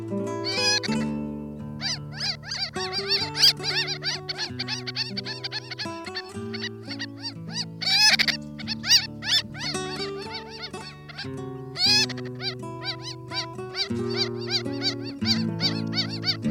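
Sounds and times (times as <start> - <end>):
Ross's gull calling with high nasal yelping notes: 0.0 - 16.4.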